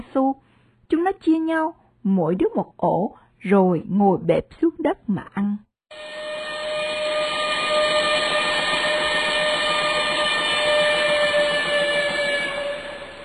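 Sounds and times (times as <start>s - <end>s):
speech: 1.1s - 5.7s
steam train whistle: 5.9s - 13.2s.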